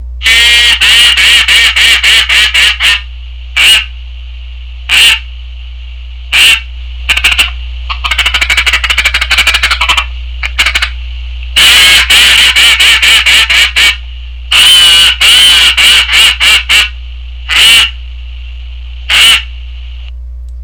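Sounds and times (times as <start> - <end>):
duck call: 0.2 - 4.0, 4.9 - 5.3, 6.3 - 11.0, 11.6 - 18.0, 19.1 - 19.5.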